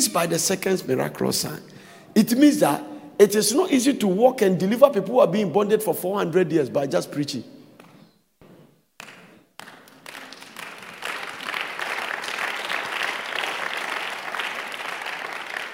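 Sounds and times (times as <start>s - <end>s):
speech: 0.0s - 7.6s
crowd applauding with many hands: 9.0s - 15.7s.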